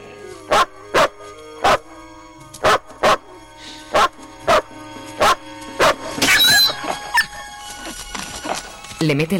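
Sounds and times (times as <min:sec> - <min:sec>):
dog barking: 0:00.5 - 0:01.9, 0:02.6 - 0:06.4
dog yelping squeal: 0:06.2 - 0:07.4
speech: 0:09.1 - 0:09.3.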